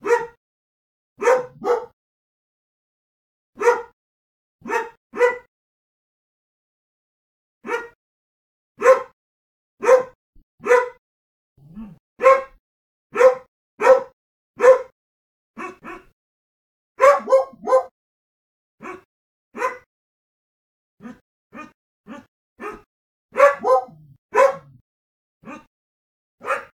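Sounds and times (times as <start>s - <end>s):
mixed breed dog: 0.0s - 0.4s, 1.2s - 2.0s, 3.6s - 4.0s, 4.6s - 5.5s, 7.6s - 8.0s, 8.8s - 9.2s, 9.8s - 11.0s, 12.2s - 15.0s, 15.6s - 16.2s, 17.0s - 17.9s, 18.8s - 19.9s, 21.0s - 24.8s, 25.4s - 25.7s, 26.4s - 26.7s.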